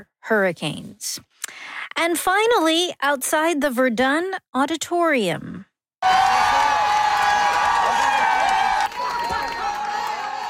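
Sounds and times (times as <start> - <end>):
speech: 0.0 - 6.4
large crowd of fans cheering and shouting outside an auditorium: 6.0 - 10.4.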